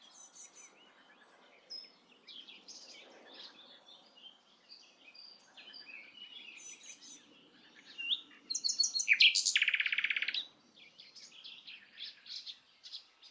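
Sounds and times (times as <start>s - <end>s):
common nightingale Luscinia megarhynchos singing soft scattered notes: 0.0s - 13.2s.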